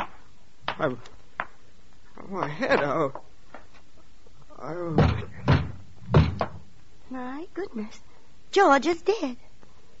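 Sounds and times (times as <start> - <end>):
speech: 0.8 - 1.2, 2.2 - 3.3, 4.6 - 5.5, 7.1 - 9.4
police pounding heavily on a door to be let in: 4.9 - 6.6.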